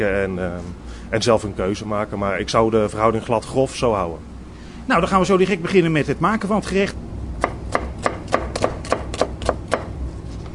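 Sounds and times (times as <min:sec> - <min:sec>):
speech: 0:00.0 - 0:04.3, 0:04.9 - 0:07.0
knife chopping a shallot on a cutting board: 0:07.4 - 0:09.9.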